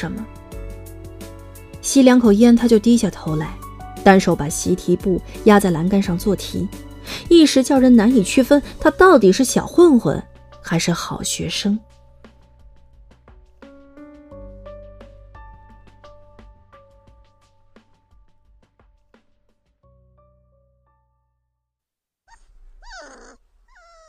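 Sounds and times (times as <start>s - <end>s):
speech: 0.0s - 0.5s, 1.8s - 11.9s
gentle music: 0.0s - 21.4s
dog whimpering and fussing while being fed beneath a staircase: 22.3s - 24.0s.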